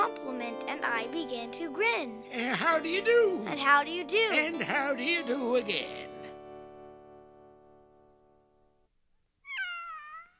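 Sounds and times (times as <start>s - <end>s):
speech: 0.4s - 6.1s
high thin kitten meow: 9.4s - 10.3s.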